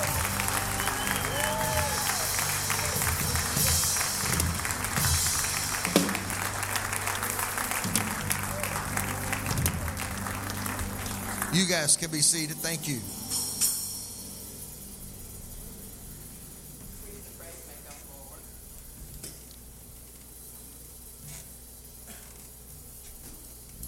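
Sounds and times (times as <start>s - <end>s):
faint voices and cheers: 0.0s - 11.7s
congregation applauding in a large room: 0.0s - 13.0s
speech: 11.6s - 13.2s.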